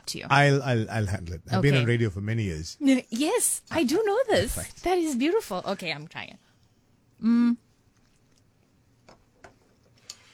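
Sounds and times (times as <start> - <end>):
speech: 0.1 - 6.5, 7.2 - 7.6
person humming: 7.2 - 7.7.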